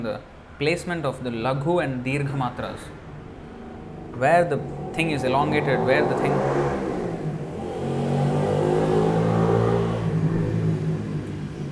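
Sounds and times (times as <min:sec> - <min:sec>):
speech: 0:00.0 - 0:03.0, 0:04.2 - 0:06.6
motorcycle engine revving: 0:03.0 - 0:11.7.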